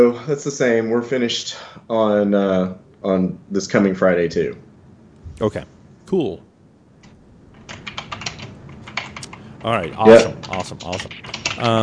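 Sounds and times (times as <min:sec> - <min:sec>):
speech: 0:00.0 - 0:04.7, 0:05.4 - 0:06.5, 0:09.6 - 0:11.8
typing on mechanical keyboard: 0:07.7 - 0:11.8.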